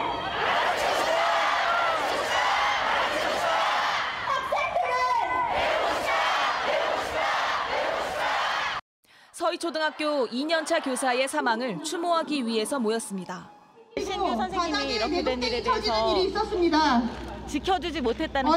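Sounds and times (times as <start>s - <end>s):
tens of thousands of teachers chanting slogans in the street in Seoul: 0.2s - 4.4s, 5.2s - 8.8s, 9.7s - 12.0s
speech: 9.6s - 13.5s, 14.2s - 18.5s.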